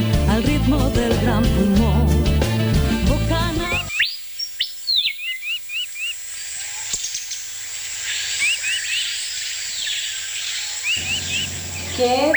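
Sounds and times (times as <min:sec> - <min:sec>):
music: 0:00.0 - 0:03.9
Amazonian birds of Guaviare calling in the Amazon rainforest: 0:03.7 - 0:12.3
steady hiss of insects: 0:05.7 - 0:12.3.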